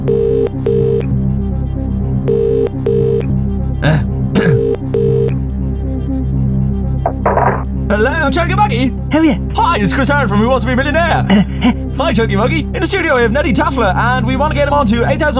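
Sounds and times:
telephone ringing in double bursts: 0.0s - 1.1s, 2.3s - 3.3s, 4.6s - 5.4s
steady low drone: 0.0s - 13.0s
speech: 3.8s - 4.1s, 8.3s - 15.3s
laughter: 11.1s - 12.2s.

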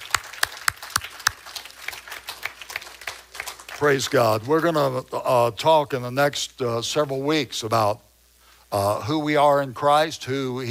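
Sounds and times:
people clapping to thank the Lord: 0.0s - 4.5s
speech: 3.8s - 8.1s, 8.7s - 10.6s.

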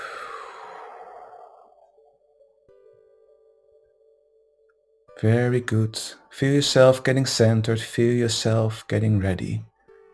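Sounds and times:
deep breath out through the mouth during a relaxation breathing exercise: 0.0s - 1.9s
speech: 5.2s - 9.7s.

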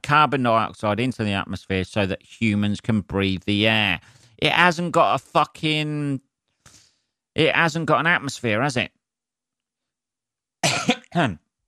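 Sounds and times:
speech: 0.1s - 6.8s, 7.4s - 9.0s, 10.8s - 11.4s
harsh coughing after nearly choking: 10.6s - 11.4s.

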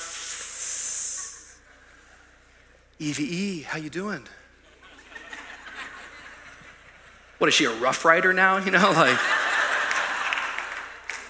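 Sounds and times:
voice imitating a snake's hiss: 0.0s - 1.6s
speech: 3.0s - 4.4s, 7.4s - 9.4s
laughter: 4.6s - 7.2s, 8.7s - 10.8s.

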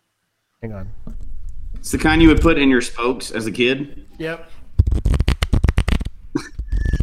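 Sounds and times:
speech: 0.6s - 4.6s
playing cards riffle shuffling: 4.8s - 7.0s.

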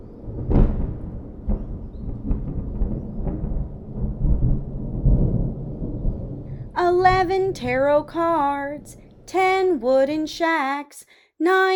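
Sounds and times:
thunderstorm with deep rolling thunder: 0.0s - 9.4s
speech: 6.8s - 11.7s.

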